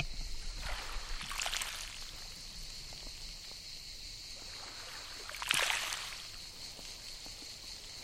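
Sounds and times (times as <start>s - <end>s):
small sea waves breaking on fine pebbles along a beach: 0.0s - 2.2s, 4.5s - 6.3s.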